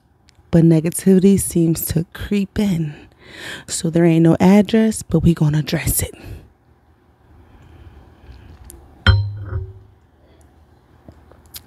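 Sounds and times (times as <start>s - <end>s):
speech: 0.5s - 6.4s
bright wine glass clink: 9.1s - 9.9s.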